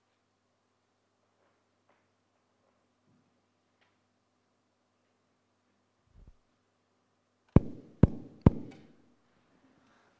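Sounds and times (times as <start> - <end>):
firm knocks on a door with a short resonant ring: 7.6 - 8.8.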